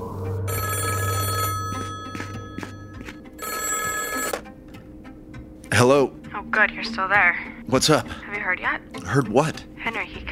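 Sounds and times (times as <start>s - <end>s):
telephone bell ringing: 0.5s - 4.5s
speech: 5.8s - 10.2s.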